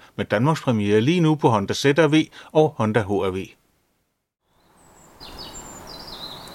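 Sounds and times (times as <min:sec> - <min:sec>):
outdoor noise: 0:00.0 - 0:06.5
speech: 0:00.2 - 0:03.6
birds chirping outdoors in spring: 0:04.5 - 0:06.5.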